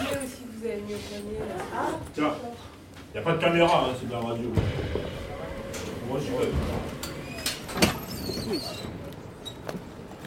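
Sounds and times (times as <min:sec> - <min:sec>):
speech: 0:00.7 - 0:05.2, 0:06.1 - 0:07.0, 0:07.8 - 0:09.0
low hum: 0:04.4 - 0:08.2
heavy metal prison door opening at the prison building in Fresnes: 0:04.5 - 0:09.7.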